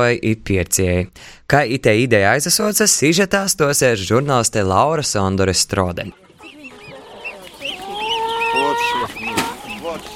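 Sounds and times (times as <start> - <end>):
speech: 0.0 - 6.3
busy crowd noise at a monthly market in Viļāni Latvia: 6.1 - 10.1
hens clucking and squawking at a monthly market in Viļāni Latvia: 6.1 - 10.1.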